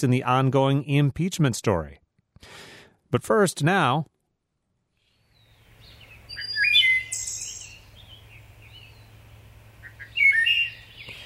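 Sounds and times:
speech: 0:00.0 - 0:04.1
wood thrush singing: 0:05.0 - 0:11.2.

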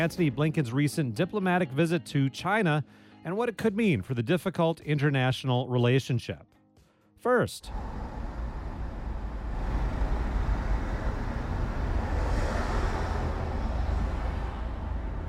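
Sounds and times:
speech: 0:00.0 - 0:06.5, 0:07.2 - 0:08.0
city traffic heard from inside a car: 0:07.7 - 0:15.2.

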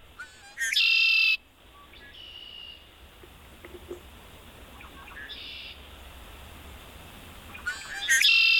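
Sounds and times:
outdoor hiss: 0:00.0 - 0:08.5
bird chirps and calls: 0:00.2 - 0:02.9, 0:04.7 - 0:05.8, 0:07.5 - 0:08.5
red-winged blackbird song: 0:00.2 - 0:03.0, 0:04.7 - 0:05.8, 0:07.5 - 0:08.5.

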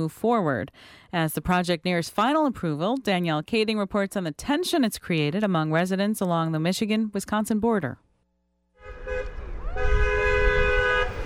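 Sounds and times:
speech: 0:00.0 - 0:08.0
car horns honking in support of protesters on a street corner in Menominee: 0:08.8 - 0:11.2.

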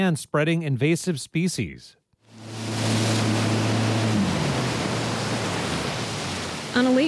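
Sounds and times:
speech: 0:00.0 - 0:02.6, 0:06.8 - 0:07.0
churning lake water rushing: 0:02.3 - 0:07.0
wake surfing motorboat engine droning: 0:02.3 - 0:07.0.

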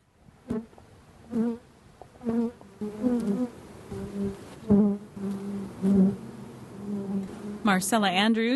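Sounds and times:
honeybee swarm buzzing in a tree: 0:00.5 - 0:01.6, 0:02.2 - 0:07.9
speech: 0:01.3 - 0:01.6, 0:07.7 - 0:08.5.

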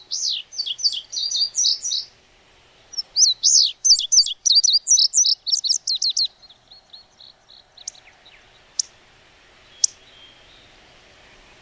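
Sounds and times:
Indigo Bunting singing: 0:00.0 - 0:02.2, 0:02.8 - 0:09.0, 0:09.6 - 0:11.6.

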